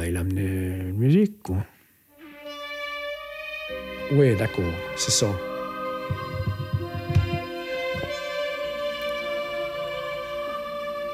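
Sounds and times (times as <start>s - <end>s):
speech: 0.1s - 1.8s, 4.1s - 6.3s
sustained synthesizer chords: 2.1s - 11.1s
soft deep thumping pulses: 5.8s - 8.2s.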